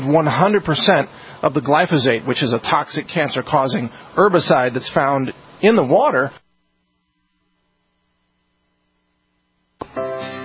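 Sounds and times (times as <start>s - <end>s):
laboratory vacuum pumps humming: 0.0s - 6.3s
speech: 0.1s - 6.4s.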